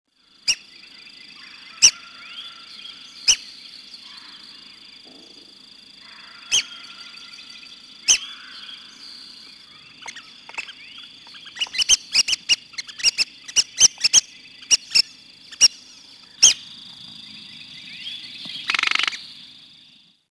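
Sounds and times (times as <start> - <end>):
red-cockaded woodpecker: 1.4 - 5.4, 6.0 - 16.7, 18.1 - 19.3.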